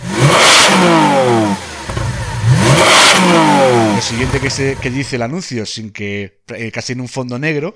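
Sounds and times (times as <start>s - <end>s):
Lamborghini sports car engine revving in neutral: 0.0s - 5.2s
speech: 4.2s - 7.7s.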